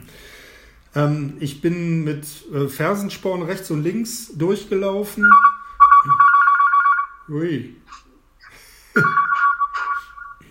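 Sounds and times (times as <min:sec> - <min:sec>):
speech: 0:01.0 - 0:06.2, 0:07.3 - 0:08.0, 0:09.0 - 0:09.2
telephone ringing with bright electronic warbling ringtone: 0:05.2 - 0:07.3, 0:09.0 - 0:10.4.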